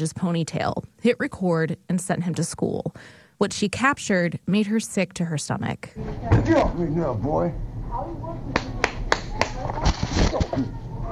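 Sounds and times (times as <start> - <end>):
speech: 0.0 - 7.7, 10.3 - 10.8
boy clapping hands at school: 8.5 - 9.6.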